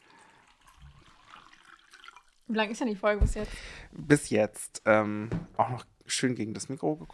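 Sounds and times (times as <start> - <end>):
water pouring into a glass: 0.0 - 2.6
speech: 2.5 - 7.1
low thump: 3.2 - 3.6.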